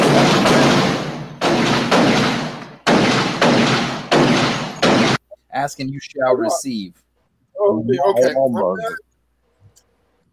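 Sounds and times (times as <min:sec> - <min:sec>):
gunshot sound effects: 0:00.0 - 0:05.2
speech: 0:05.6 - 0:07.0, 0:07.6 - 0:09.1.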